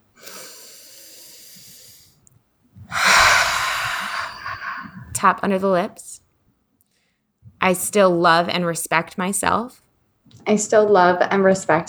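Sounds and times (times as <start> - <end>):
deep breath during a self-acceptance tapping exercise: 0.1 - 2.2, 2.8 - 5.4
speech: 5.2 - 6.1, 7.6 - 9.8, 10.4 - 11.8.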